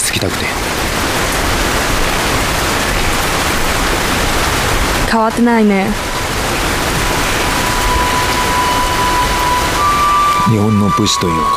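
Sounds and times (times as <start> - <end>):
rushing river water at riverside: 0.0 - 11.5
speech: 0.2 - 1.0, 5.1 - 6.1, 10.5 - 11.5.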